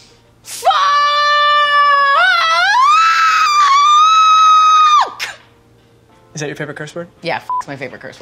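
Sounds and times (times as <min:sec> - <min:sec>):
person screaming, reenacting a bungee jump: 0:00.6 - 0:05.4
speech: 0:06.4 - 0:08.2.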